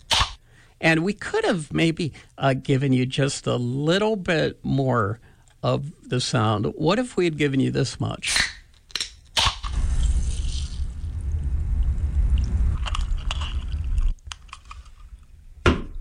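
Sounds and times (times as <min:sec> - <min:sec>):
can of pop opening crack: 0:00.0 - 0:00.4, 0:08.3 - 0:10.8, 0:12.8 - 0:15.1
speech: 0:00.8 - 0:08.5
can of pop fizzing hiss: 0:09.7 - 0:13.8.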